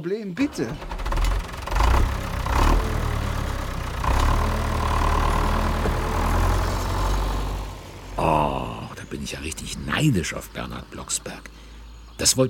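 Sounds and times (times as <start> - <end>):
speech: 0.0 - 0.9, 9.1 - 11.6, 12.2 - 12.4
tractor engine rumbling and driving off: 0.0 - 12.4.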